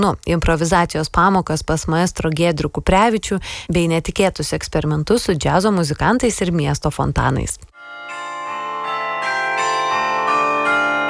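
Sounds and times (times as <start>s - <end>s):
speech: 0.0s - 7.7s
carillon bells ringing over a city: 7.8s - 11.0s.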